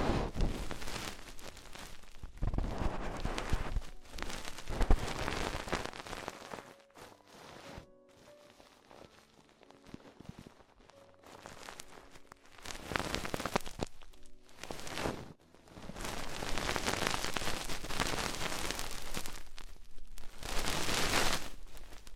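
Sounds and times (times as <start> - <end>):
crinkly brushing and scratching against the ears: 0.0 - 22.1.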